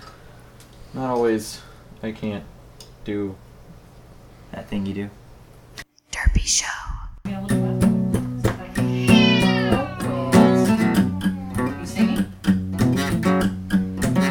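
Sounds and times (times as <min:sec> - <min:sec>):
speech: 0:00.9 - 0:03.5, 0:04.5 - 0:05.2, 0:06.5 - 0:06.7
steady rhythmic musical backing with a regular beat: 0:07.4 - 0:14.2
cat meowing in drawn-out wavering cries: 0:08.7 - 0:12.2.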